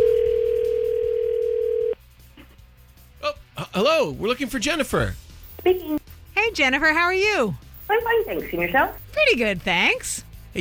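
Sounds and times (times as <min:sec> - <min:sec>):
electronic telephone ringback tone on a phone line: 0:00.0 - 0:02.0
speech: 0:03.8 - 0:06.0, 0:06.6 - 0:10.5.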